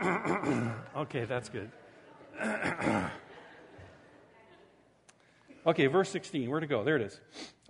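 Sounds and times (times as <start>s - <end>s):
harsh coughing: 0.0s - 0.9s, 2.4s - 3.3s
speech: 1.0s - 1.8s, 2.4s - 3.2s, 5.6s - 7.6s
laughter: 1.5s - 4.9s.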